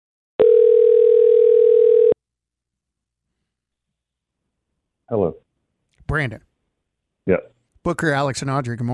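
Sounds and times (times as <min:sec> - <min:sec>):
phone line electronic ring tone: 0:00.4 - 0:02.2
speech: 0:05.1 - 0:05.4, 0:06.1 - 0:06.5, 0:07.2 - 0:08.9.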